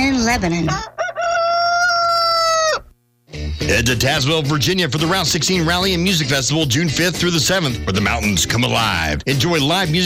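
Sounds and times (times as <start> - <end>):
speech: 0.3 - 1.0, 3.7 - 10.0
rooster crowing: 0.7 - 3.0.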